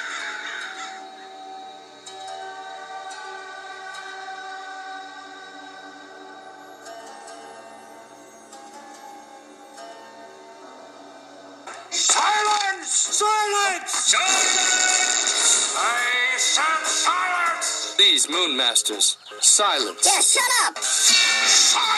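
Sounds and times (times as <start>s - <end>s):
several crows cawing harshly: 0.0s - 1.2s
speech: 13.0s - 21.9s.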